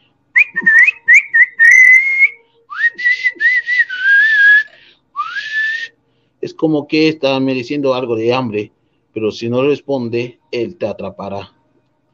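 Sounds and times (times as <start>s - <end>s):
person whistling a wavering eerie tune: 0.4s - 5.9s
speech: 6.6s - 11.6s.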